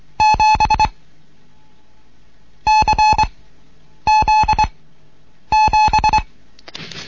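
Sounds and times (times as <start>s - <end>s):
Morse code beeps for the letters C and Z and the number 7: 0.2s - 0.9s, 2.7s - 3.3s, 4.1s - 4.7s, 5.5s - 6.3s.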